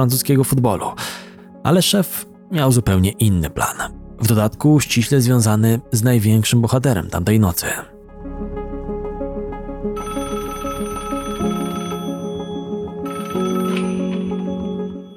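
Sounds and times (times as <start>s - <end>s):
speech: 0.0s - 7.9s
dense tonal backdrop: 0.0s - 15.0s
telephone ringing with electronic trill: 10.0s - 15.1s.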